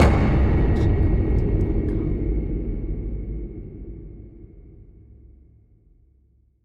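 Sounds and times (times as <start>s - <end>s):
dark cinematic hit: 0.0s - 5.6s.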